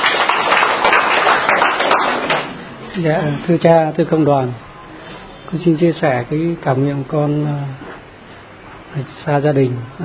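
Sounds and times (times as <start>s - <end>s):
church congregation applauding: 0.0s - 2.7s
speech: 3.0s - 4.6s, 5.5s - 7.8s, 8.9s - 10.0s.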